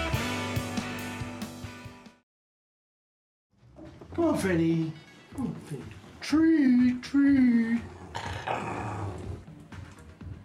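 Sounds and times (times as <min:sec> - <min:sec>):
speech: 0:04.2 - 0:09.2
dog growling: 0:07.8 - 0:09.6.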